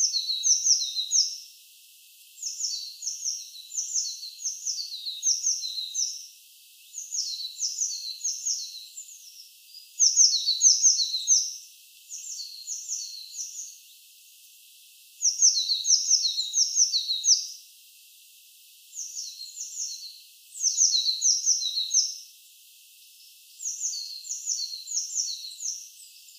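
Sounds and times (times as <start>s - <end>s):
Eurasian blue tit chirps, Cyanistes caeruleus: 0.0s - 1.3s, 2.4s - 6.2s, 6.9s - 9.4s, 10.0s - 13.8s, 15.2s - 17.5s, 18.9s - 22.2s, 23.6s - 26.3s
background hiss: 0.0s - 26.3s.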